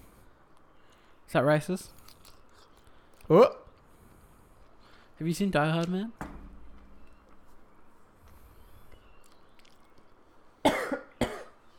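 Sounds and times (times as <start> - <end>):
quiet noise: 0.0 - 11.7
speech: 1.3 - 2.0, 3.3 - 3.6, 5.2 - 6.3
sharp coughs: 10.6 - 11.6.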